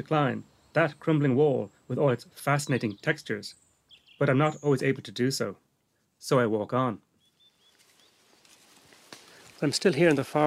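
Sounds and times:
speech: 0.0s - 3.6s, 4.2s - 5.6s, 6.2s - 7.1s, 9.6s - 10.4s
birds chirping in a forest: 0.0s - 10.4s
soft rustling: 7.6s - 10.4s.

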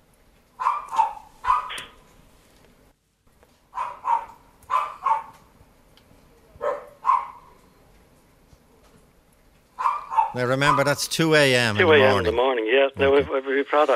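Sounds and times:
dog barking in a garden at night: 0.6s - 2.0s, 3.7s - 5.5s, 6.6s - 7.6s, 9.8s - 11.0s
speech: 10.4s - 13.9s.

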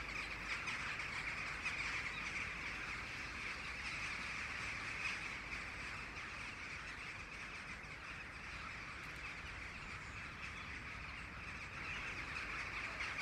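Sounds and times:
huge flock of rooks calling as they gather to roost: 0.0s - 13.1s.

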